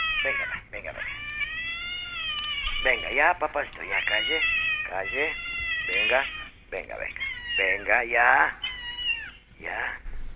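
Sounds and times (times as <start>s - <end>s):
cat meowing: 0.0s - 9.5s
speech: 2.8s - 8.6s, 9.6s - 10.0s.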